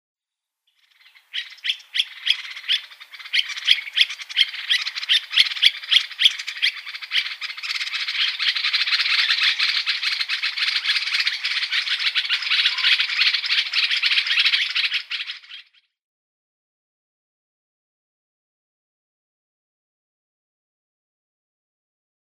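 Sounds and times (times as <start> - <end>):
Common Bulbul calling: 0.7 - 15.9.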